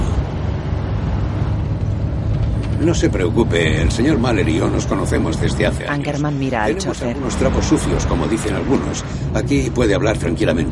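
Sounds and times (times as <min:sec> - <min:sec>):
black car engine and road noise on a motorway: 0:00.0 - 0:10.7
speech: 0:02.8 - 0:10.7.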